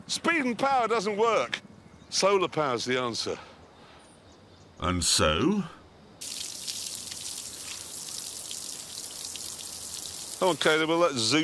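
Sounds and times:
speech: 0:00.1 - 0:03.5, 0:04.8 - 0:05.8, 0:10.4 - 0:11.4
water gushing from a pipe: 0:06.2 - 0:11.0.

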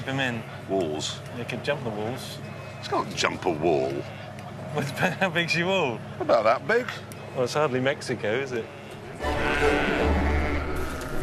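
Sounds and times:
speech: 0:00.0 - 0:10.0
constant dense murmur: 0:00.0 - 0:11.2
North Country Mule sheep bleating in an auction ring: 0:08.7 - 0:10.9.

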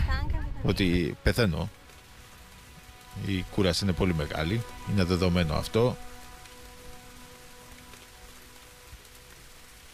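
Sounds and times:
steady rain pattering on a hard surface: 0:00.0 - 0:09.9
speech: 0:00.6 - 0:01.8, 0:03.2 - 0:06.1.

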